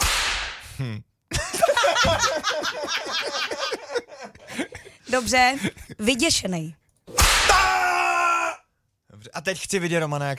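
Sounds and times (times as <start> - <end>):
whip crack: 0.0 - 0.7, 7.1 - 7.7
speech: 0.8 - 6.8, 9.2 - 10.3
lively laughter in rapid rhythmic bursts: 1.3 - 6.1.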